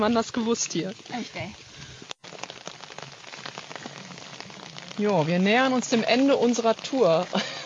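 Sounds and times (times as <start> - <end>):
speech: 0.0 - 1.6, 5.0 - 7.6
steady rain falling outdoors: 0.0 - 7.6.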